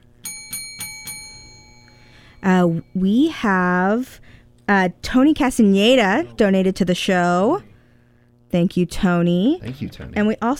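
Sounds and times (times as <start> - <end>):
small bell ringing to celebrate donations: 0.2 - 3.3
speech: 2.4 - 7.7, 8.5 - 10.5.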